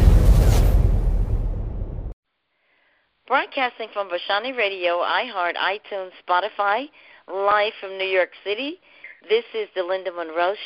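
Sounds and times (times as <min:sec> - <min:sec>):
explosion sound effect with rumbling boom: 0:00.0 - 0:02.2
speech: 0:03.3 - 0:10.6.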